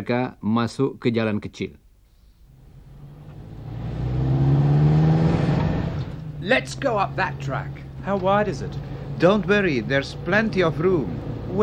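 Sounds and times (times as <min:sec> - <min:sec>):
speech: 0:00.0 - 0:01.8, 0:06.4 - 0:11.6
car engine revving during a test drive: 0:02.5 - 0:11.6.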